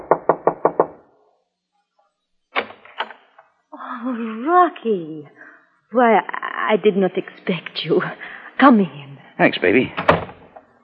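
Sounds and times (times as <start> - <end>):
firm hollow knocking on a door: 0.0 - 1.0
speech: 4.0 - 10.1.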